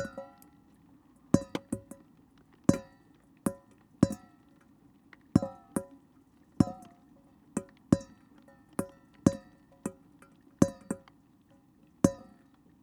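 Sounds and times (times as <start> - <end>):
water dripping from a drainpipe into a metal dish outside: 0.0 - 12.8.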